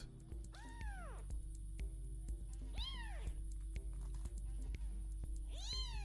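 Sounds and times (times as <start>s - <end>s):
steady low hum: 0.0s - 6.0s
high-pitched kitten meows: 0.5s - 1.2s, 2.8s - 3.3s, 5.5s - 6.0s.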